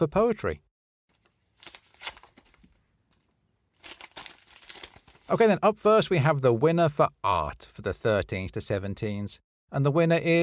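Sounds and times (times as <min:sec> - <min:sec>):
speech: 0:00.0 - 0:00.7, 0:05.3 - 0:10.4
paper envelope being torn open: 0:01.2 - 0:05.4.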